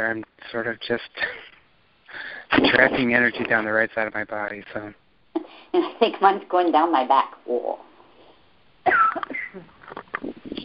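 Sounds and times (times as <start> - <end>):
speech: 0.0 - 1.5, 2.1 - 7.9, 8.8 - 10.3
person coughing: 8.9 - 9.7.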